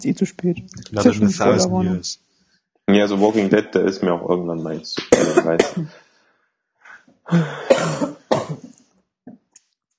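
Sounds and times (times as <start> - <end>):
speech: 0.0 - 2.2, 2.9 - 6.0, 7.3 - 8.1
person coughing into the microphone: 5.0 - 6.0, 7.3 - 8.7.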